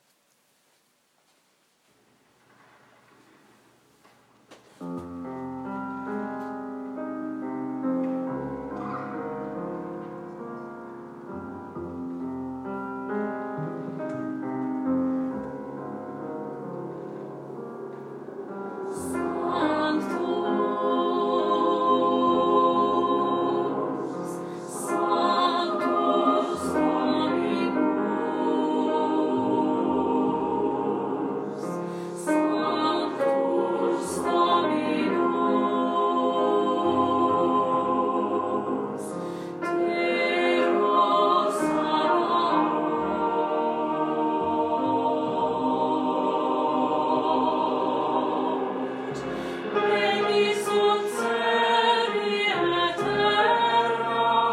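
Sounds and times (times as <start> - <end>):
choir alto section singing a mass: 4.8 - 54.5.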